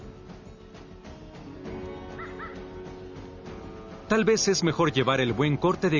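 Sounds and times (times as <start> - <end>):
dense rustling outdoor background: 0.0 - 5.9
crows cawing: 2.1 - 2.8
speech: 4.1 - 5.9.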